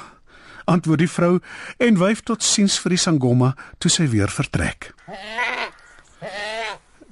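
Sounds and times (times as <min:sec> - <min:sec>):
speech: 0:00.7 - 0:05.6
goat bleating: 0:05.0 - 0:07.1.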